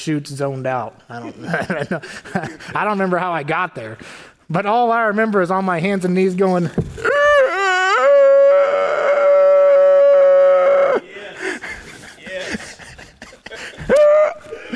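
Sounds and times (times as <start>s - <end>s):
speech: 0.0s - 7.2s
laughter: 1.1s - 3.2s, 11.0s - 14.7s
person on hands and knees imitating a dog howling: 7.0s - 11.0s, 13.9s - 14.5s.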